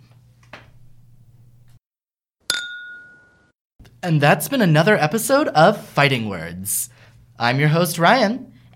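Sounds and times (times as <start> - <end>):
glasses clinking in a toast: 2.5 - 3.5
speech: 4.0 - 8.7.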